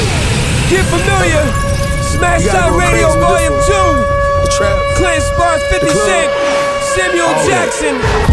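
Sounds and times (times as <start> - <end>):
alarm ringing: 0.1 - 8.3.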